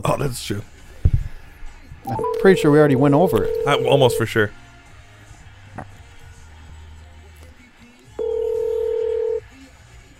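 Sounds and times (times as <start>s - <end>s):
speech: 0.0s - 0.8s, 2.0s - 4.6s
steady electronic telephone tone while a call is placed: 2.1s - 4.2s, 8.2s - 9.4s.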